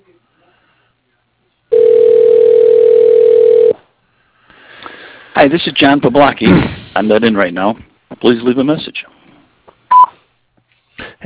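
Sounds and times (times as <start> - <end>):
telephone line beep during call transfer to voicemail: 1.7 - 3.8
speech: 5.4 - 9.0.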